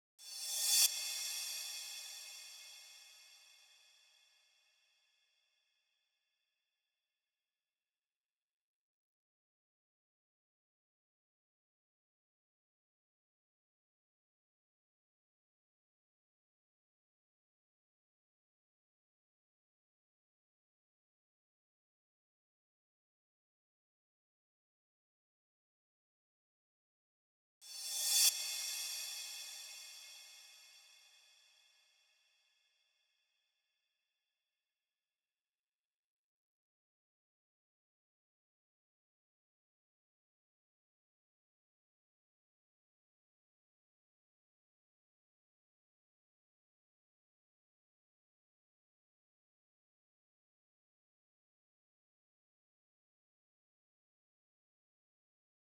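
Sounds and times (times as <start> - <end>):
reversed cymbal crash: 0.2 - 3.6, 27.7 - 30.9.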